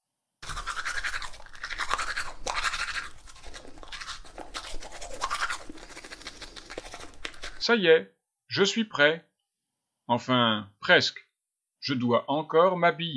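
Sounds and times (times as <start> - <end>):
toothbrush bristles scrubbing against teeth: 0.4 - 7.7
speech: 7.7 - 9.3, 10.1 - 11.2, 11.8 - 13.1.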